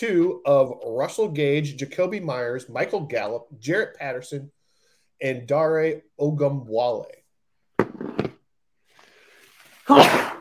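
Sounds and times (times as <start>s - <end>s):
speech: 0.0s - 4.6s, 5.2s - 7.2s, 9.9s - 10.3s
person sneezing: 9.8s - 10.3s.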